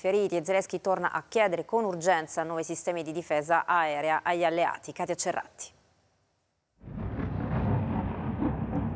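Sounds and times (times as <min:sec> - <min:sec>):
speech: 0:00.0 - 0:05.8
roar of explosions: 0:06.8 - 0:08.9.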